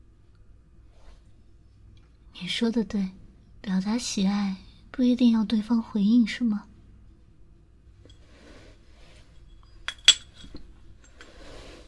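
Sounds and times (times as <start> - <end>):
speech: 2.4 - 6.7
bowls and chopsticks clinking while being cleared: 9.4 - 11.4.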